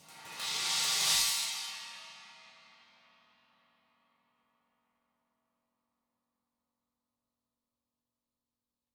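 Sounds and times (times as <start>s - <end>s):
china flourish cymbal: 0.0s - 3.1s.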